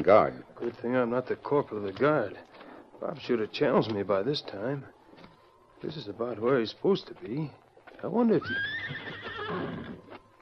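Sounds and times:
speech: 0:00.0 - 0:05.0, 0:05.8 - 0:09.9
horse neighing under a tree at night: 0:08.4 - 0:10.1.

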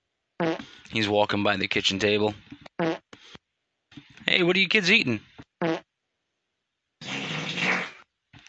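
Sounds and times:
man farting: 0:00.4 - 0:00.7, 0:02.8 - 0:03.1, 0:05.6 - 0:05.8, 0:07.0 - 0:08.1
speech: 0:00.9 - 0:02.9, 0:04.4 - 0:05.8.

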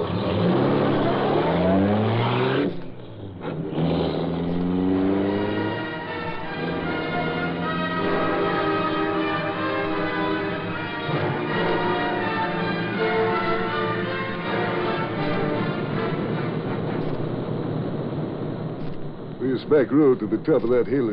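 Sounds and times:
powerful car engine revving and accelerating away: 0:00.0 - 0:21.1
speech: 0:19.7 - 0:21.1.

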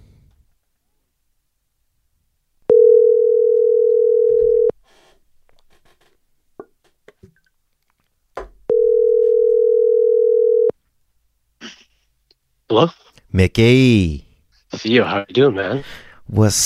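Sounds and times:
phone ringback tone on an outgoing call: 0:02.7 - 0:04.7, 0:08.7 - 0:10.7
faint clicks and rustling: 0:06.8 - 0:08.2
speech: 0:12.7 - 0:14.2, 0:14.8 - 0:16.6.

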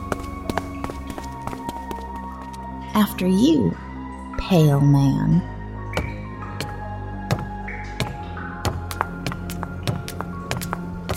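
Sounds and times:
running footsteps of someone fleeing: 0:00.0 - 0:02.8, 0:06.0 - 0:11.1
speech: 0:03.0 - 0:03.8, 0:04.4 - 0:05.5.

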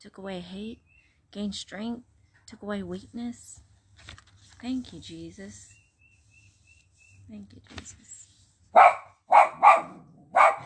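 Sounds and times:
speech: 0:00.0 - 0:05.7, 0:07.3 - 0:09.0
male pet dog barking: 0:08.8 - 0:10.6.

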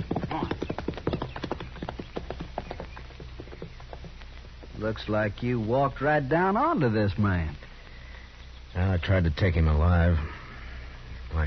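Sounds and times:
horse hooves clip-clopping at a walking pace: 0:00.0 - 0:07.8
speech: 0:04.8 - 0:07.6, 0:08.8 - 0:10.4.

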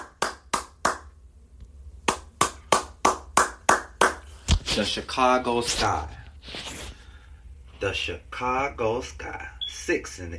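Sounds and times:
hand claps: 0:00.0 - 0:01.2, 0:02.0 - 0:04.7
speech: 0:04.8 - 0:06.7, 0:07.8 - 0:10.3.

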